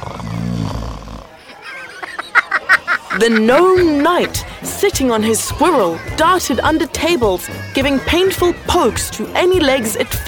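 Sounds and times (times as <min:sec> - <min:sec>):
low rumbling snore: 0:00.0 - 0:01.4
laughter: 0:01.3 - 0:05.4
speech: 0:03.2 - 0:10.2.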